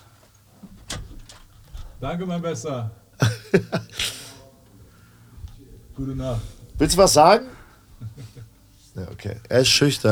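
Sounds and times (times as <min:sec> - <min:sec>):
door latch click: 0:00.7 - 0:01.9
speech: 0:02.0 - 0:04.1, 0:06.0 - 0:07.6, 0:09.0 - 0:10.1
laughter: 0:03.2 - 0:04.4, 0:07.9 - 0:08.6.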